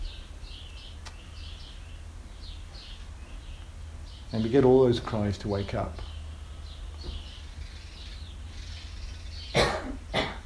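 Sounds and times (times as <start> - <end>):
faint bird calls chirping outdoors: 0.0 - 10.4
speech: 4.3 - 6.1.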